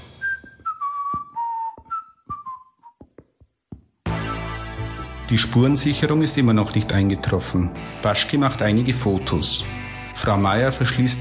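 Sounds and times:
man whistling a short descending tune in an office building: 0.1s - 3.0s, 4.2s - 5.2s
regular soft thuds: 0.2s - 4.0s
speech: 5.3s - 11.1s.

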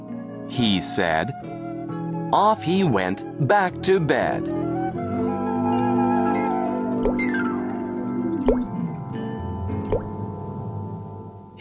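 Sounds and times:
speech: 0.5s - 1.6s, 2.3s - 4.6s, 7.1s - 7.4s
sustained tonal music: 4.4s - 11.5s
water dripping and plopping: 7.0s - 7.2s, 8.4s - 8.8s, 9.8s - 10.2s.

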